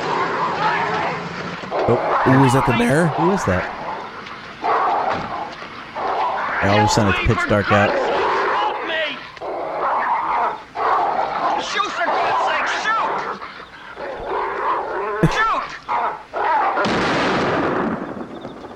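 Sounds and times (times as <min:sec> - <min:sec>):
busy video game noise: 0:00.0 - 0:18.7
speech: 0:01.9 - 0:03.8, 0:06.6 - 0:08.1
video game gunshot of a character shooting: 0:16.8 - 0:18.7.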